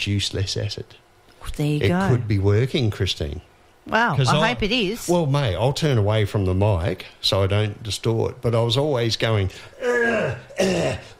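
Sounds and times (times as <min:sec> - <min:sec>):
speech: 0:00.0 - 0:11.1
person clearing throat at a microphone: 0:09.8 - 0:11.1.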